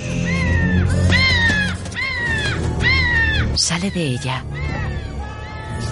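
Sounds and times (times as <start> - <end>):
raven cawing as it flies into a stone cabin: 0.0 - 5.8
speech: 3.8 - 4.6.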